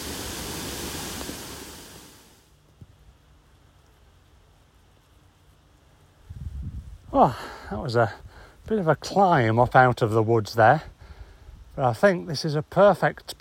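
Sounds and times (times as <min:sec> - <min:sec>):
river water rushing: 0:00.0 - 0:02.3
speech: 0:07.2 - 0:10.9, 0:11.8 - 0:13.3.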